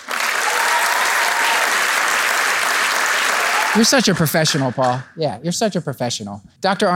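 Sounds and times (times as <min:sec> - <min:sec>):
live crowd applauding a guest: 0:00.0 - 0:04.5
speech: 0:03.7 - 0:06.9.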